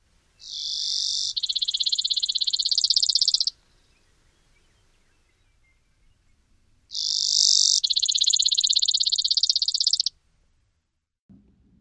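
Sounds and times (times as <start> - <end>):
Brewer's Sparrow singing high two-part buzzy trill: 0.4 - 3.6, 6.9 - 10.1.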